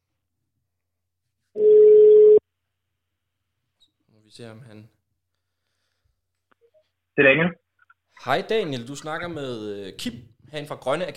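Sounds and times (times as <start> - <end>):
telephone call ringing tone: 1.6 - 2.4
speech: 4.3 - 5.0, 7.2 - 7.6, 8.2 - 11.1.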